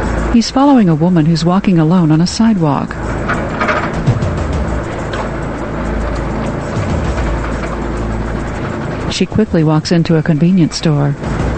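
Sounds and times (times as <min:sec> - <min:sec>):
faint road noise: 0:00.0 - 0:11.5
old car slowly driving past a restaurant: 0:00.0 - 0:11.5
speech: 0:00.4 - 0:03.1, 0:09.2 - 0:11.4.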